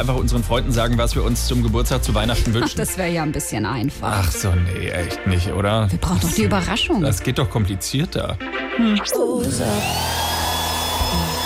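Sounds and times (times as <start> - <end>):
speech: 0.0 - 10.4
hair dryer blowing while drying hair: 9.6 - 11.4.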